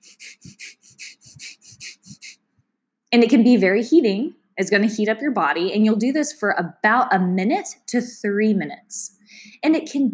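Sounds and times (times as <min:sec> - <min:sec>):
rapid forceful breath of fire nasal panting: 0:00.0 - 0:02.4
speech: 0:03.1 - 0:10.1.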